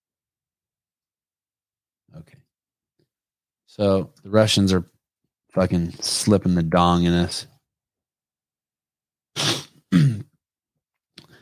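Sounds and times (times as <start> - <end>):
speech: 2.1 - 2.5, 3.7 - 4.9, 5.5 - 7.5
sniffles: 9.4 - 9.9.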